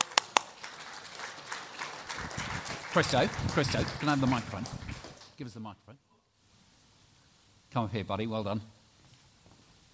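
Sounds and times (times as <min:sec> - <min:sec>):
audience applause for a volunteer being called up: 0:00.0 - 0:05.3
sharp hand claps: 0:00.0 - 0:05.4
speech: 0:03.0 - 0:04.8, 0:05.4 - 0:06.1, 0:07.7 - 0:08.8.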